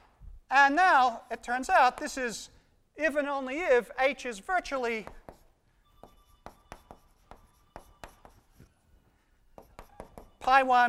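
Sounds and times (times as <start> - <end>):
speech: 0.6 - 5.2, 10.5 - 10.8
chalk or a marker writing on a board during a mathematics lecture: 5.0 - 8.8, 9.4 - 10.6.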